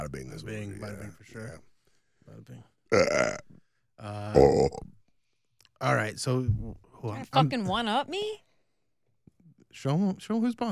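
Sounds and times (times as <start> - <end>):
speech: 0.4 - 1.7, 2.3 - 5.0, 5.8 - 8.5, 9.7 - 10.7
loud drawn-out burps: 2.9 - 3.6, 4.2 - 4.9.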